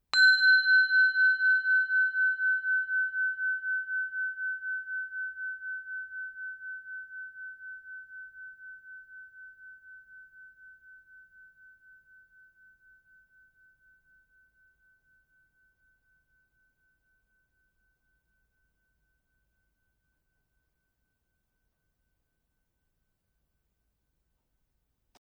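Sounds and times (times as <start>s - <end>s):
small beehive bell ringing: 0.2s - 4.5s.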